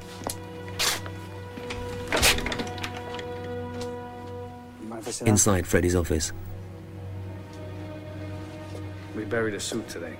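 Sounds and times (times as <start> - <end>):
door being closed with thuds: 1.6 - 3.4
speech: 5.1 - 6.5, 9.3 - 10.1.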